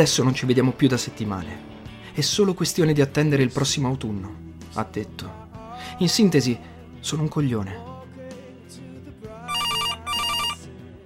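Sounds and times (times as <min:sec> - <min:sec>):
speech: 0:00.0 - 0:07.9
telephone ringing with trilling electronic bell: 0:09.5 - 0:10.6.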